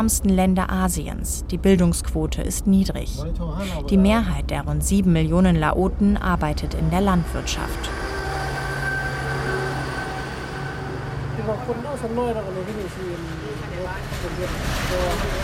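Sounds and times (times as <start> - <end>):
speech: 0.0 - 8.1, 11.5 - 15.4
low rumble of passing rail traffic: 0.0 - 15.4
high-speed train warning horn: 7.0 - 12.2.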